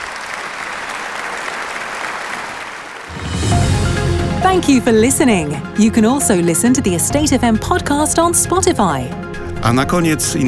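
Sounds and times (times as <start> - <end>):
audience applause with many hands clapping: 0.0 - 3.5
low rumble: 3.1 - 7.6
speech: 4.5 - 10.4.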